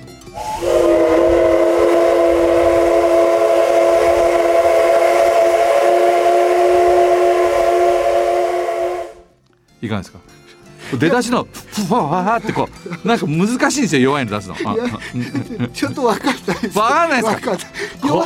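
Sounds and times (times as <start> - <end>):
D51 steam locomotive whistle sounded softly: 0.3 - 9.3
speech: 9.8 - 10.2, 10.9 - 18.2
laughter: 11.7 - 18.2.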